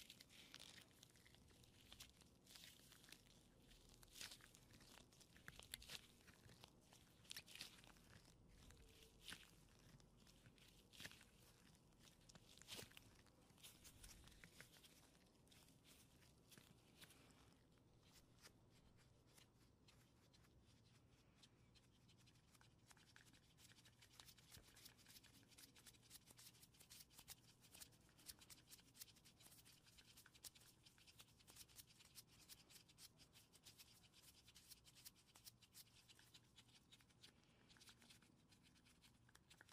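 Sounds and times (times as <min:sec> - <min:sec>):
latex gloves crinkling and squeaking as they are rubbed and handled: 0:00.0 - 0:39.7.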